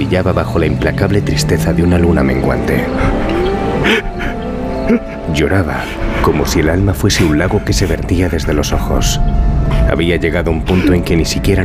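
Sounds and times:
car engine roaring at high speed: 0.0s - 9.8s
speech: 0.1s - 11.6s
hissing whoosh: 2.5s - 8.2s.

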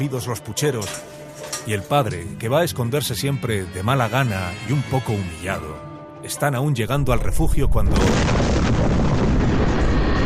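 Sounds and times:
speech: 0.0s - 9.4s
150-kilogram bomb explosion echoing between mountains: 7.6s - 10.2s.

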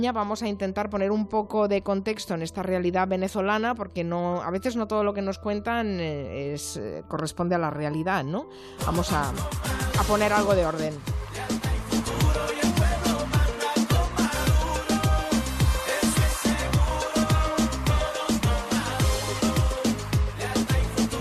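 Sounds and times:
speech: 0.0s - 11.3s
upbeat Caribbean-style dance campaign song with pounding bass beat: 8.8s - 21.1s.

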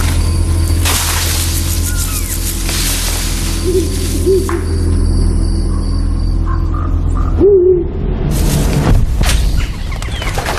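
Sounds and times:
steady low rumble and hiss of outdoor ambience: 0.0s - 10.5s
great grey owl giving deep soft hoots: 1.4s - 8.0s.

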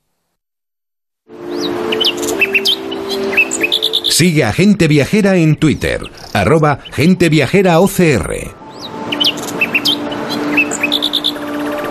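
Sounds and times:
steady hiss of open-air ambience: 1.3s - 11.8s
several birds singing outdoors in Almadén: 1.4s - 11.8s
speech: 4.2s - 8.6s.

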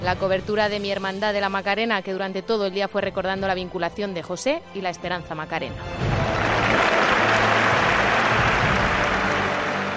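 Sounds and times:
speech: 0.0s - 6.4s
large crowd applauding: 6.0s - 9.9s.

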